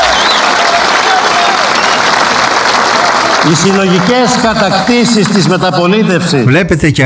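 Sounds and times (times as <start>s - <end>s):
applause from a large audience: 0.0s - 5.3s
speech: 3.5s - 7.0s.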